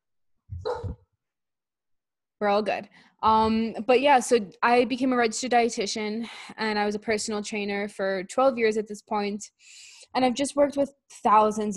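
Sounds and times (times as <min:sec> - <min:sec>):
single short loud dog bark: 0:00.6 - 0:01.0
speech: 0:02.4 - 0:11.7.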